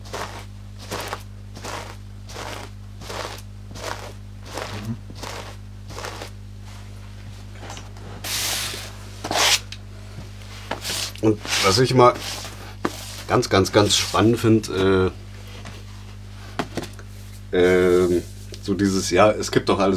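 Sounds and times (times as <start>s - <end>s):
foley footsteps crunching softly through light snow: 0.0s - 9.6s, 10.4s - 14.4s
low hum: 0.0s - 19.9s
speech: 11.3s - 12.4s, 13.3s - 15.2s, 17.5s - 19.9s.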